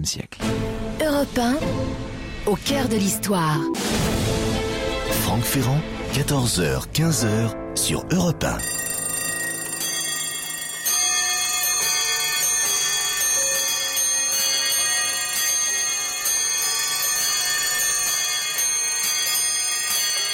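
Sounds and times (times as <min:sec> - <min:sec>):
speech: 0:00.0 - 0:04.4, 0:05.3 - 0:08.8
dense chorus of clocks ringing and chiming with metallic bells: 0:08.4 - 0:20.3.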